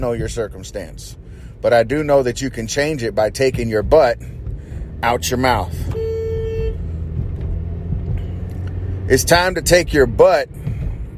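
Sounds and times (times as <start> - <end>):
speech: 0.0 - 4.4, 5.0 - 5.8, 9.1 - 10.6
engine and road noise: 0.0 - 11.1
car horn honk: 5.5 - 6.9.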